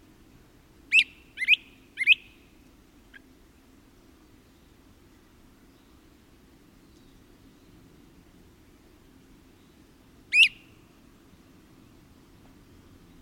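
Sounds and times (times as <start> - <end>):
Great Crested Flycatcher whistled calls: 0.9 - 2.4, 10.3 - 10.8.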